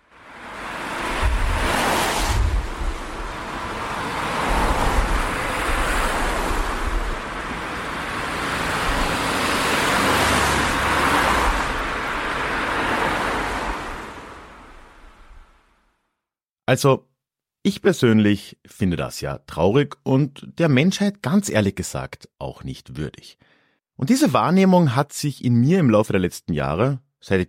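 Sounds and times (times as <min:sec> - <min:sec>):
city street traffic roar: 0:00.0 - 0:15.2
vehicles passing: 0:00.0 - 0:15.6
speech: 0:16.7 - 0:27.4.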